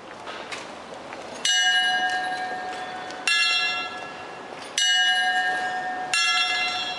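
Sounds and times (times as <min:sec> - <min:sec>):
clock tower bells chiming: 0:01.4 - 0:06.9.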